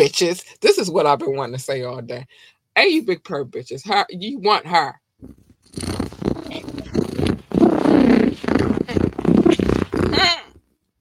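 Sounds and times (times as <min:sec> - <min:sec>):
speech: 0:00.0 - 0:06.7
person imitating a cat purring: 0:05.2 - 0:10.6.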